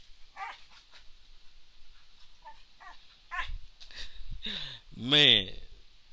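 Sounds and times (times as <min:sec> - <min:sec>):
dog whining and yipping: 0:00.3 - 0:00.8, 0:02.4 - 0:03.6
dog barking: 0:00.4 - 0:00.6
speech: 0:05.0 - 0:05.6.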